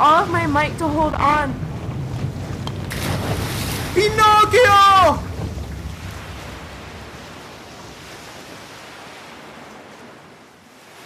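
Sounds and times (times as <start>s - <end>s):
speech: 0.0s - 1.7s, 4.0s - 5.2s
gusting wind: 0.0s - 11.0s
stormy sea with high waves: 0.0s - 11.0s
person shouting a single word: 4.0s - 5.2s.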